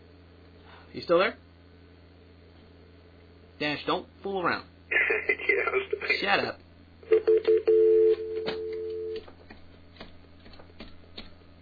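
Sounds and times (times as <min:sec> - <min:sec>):
speech: 0:00.9 - 0:01.5, 0:03.6 - 0:04.7, 0:05.3 - 0:06.6
telephone dialing tones: 0:07.1 - 0:09.2.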